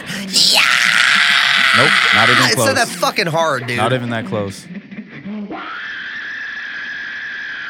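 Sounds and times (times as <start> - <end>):
person letting out an imitated horror-movie scream: 0.1 - 3.0
speech: 0.2 - 4.8.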